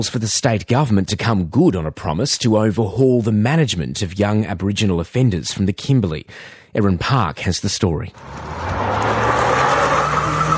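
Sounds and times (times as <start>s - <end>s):
speech: 0.0s - 9.6s
faint tyre noise of speeding stolen car: 8.2s - 10.5s
stolen car engine roaring at high revs speeding through streets: 8.2s - 10.5s.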